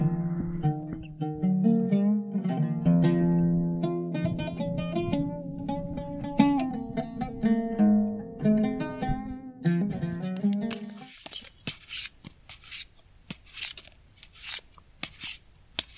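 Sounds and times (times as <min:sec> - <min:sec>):
soft tonal humming or music: 0:00.0 - 0:11.1
deck of playing cards being shuffled: 0:10.4 - 0:15.9.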